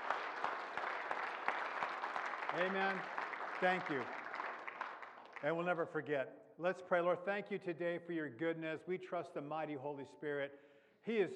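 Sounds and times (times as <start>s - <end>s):
standing church congregation applauding: 0.0s - 5.6s
speech: 2.5s - 4.2s, 5.4s - 11.3s.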